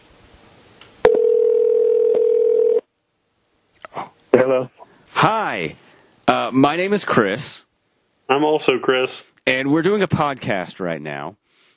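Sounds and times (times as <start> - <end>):
electronic ringback tone on an outgoing phone call: 1.0 - 2.8
speech: 4.5 - 7.7, 8.3 - 11.4.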